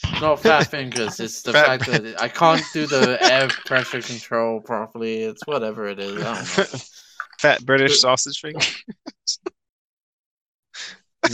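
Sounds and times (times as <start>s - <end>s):
laughter: 0.0s - 9.4s
speech: 0.2s - 9.5s
heavy breathing: 6.1s - 7.4s, 10.8s - 11.0s.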